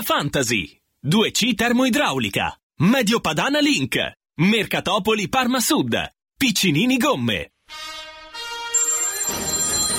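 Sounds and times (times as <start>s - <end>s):
speech: 0.0s - 8.0s
electronic telephone ringtone melody: 8.7s - 9.9s.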